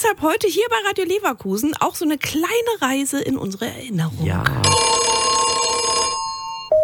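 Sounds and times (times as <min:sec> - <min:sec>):
speech: 0:00.0 - 0:04.9
landline telephone ringing: 0:04.6 - 0:06.7.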